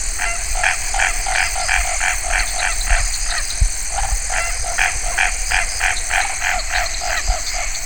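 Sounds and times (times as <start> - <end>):
Hypsiboas raniceps calling: 0.0 - 7.8.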